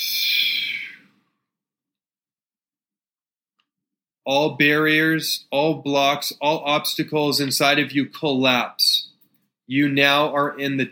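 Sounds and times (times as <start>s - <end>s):
slow breath: 0.0s - 1.4s
speech: 4.2s - 9.0s, 9.7s - 10.9s.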